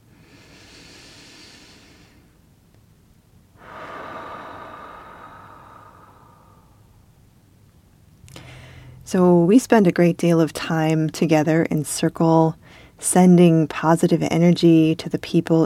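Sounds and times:
slow deep breaths during a meditation: 0.0s - 2.4s, 3.6s - 7.1s, 8.3s - 9.0s, 12.6s - 13.0s
speech: 9.1s - 15.6s.

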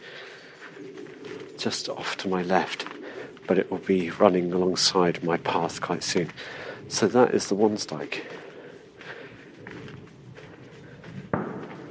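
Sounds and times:
speech: 1.6s - 2.9s, 3.5s - 8.4s
gunshot from someone shooting in the Wiltshire countryside: 11.3s - 11.9s.

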